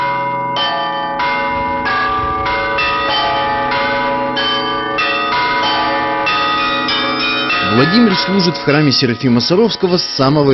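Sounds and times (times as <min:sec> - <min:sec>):
church bells ringing in a dense peal: 0:00.0 - 0:10.5
speech: 0:07.8 - 0:10.5.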